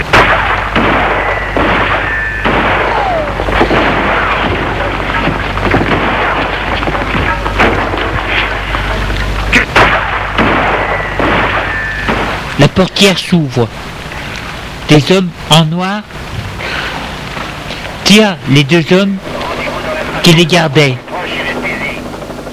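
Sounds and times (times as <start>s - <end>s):
loud chaotic burst of gunfire: 0.0s - 12.8s
dense rumbling background: 0.0s - 22.5s
speech: 12.8s - 13.9s, 14.9s - 16.3s, 18.1s - 19.3s, 20.2s - 21.0s.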